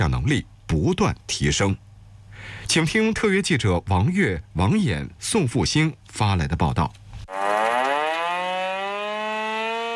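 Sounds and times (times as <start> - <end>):
speech: 0.0 - 7.4
urgent alarm siren at an army brigade camp for a combat-readiness drill: 7.3 - 9.9.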